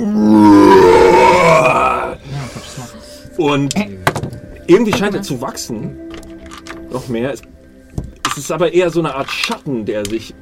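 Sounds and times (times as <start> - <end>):
bear roaring after being punched on the snout: 0.0 - 2.2
speech: 3.4 - 4.0, 4.7 - 6.1, 6.9 - 10.4.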